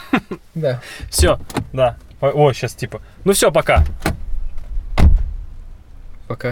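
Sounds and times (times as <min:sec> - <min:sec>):
speech: 0:00.2 - 0:04.2, 0:06.3 - 0:06.5
car door thudding as people get out of the car: 0:01.0 - 0:02.2, 0:03.5 - 0:05.5
low rumbling hum: 0:01.0 - 0:06.5.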